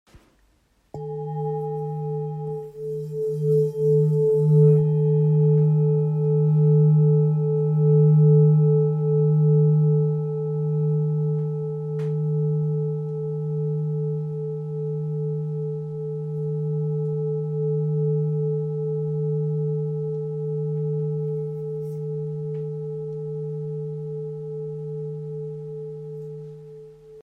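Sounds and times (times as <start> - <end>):
therapeutic singing bowl in G sharp: 0.9 - 27.2.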